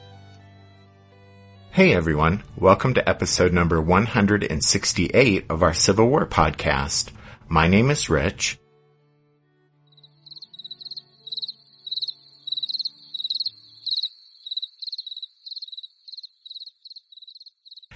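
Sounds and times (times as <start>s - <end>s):
speech: 1.8s - 8.6s
crickets chirping: 10.0s - 17.9s.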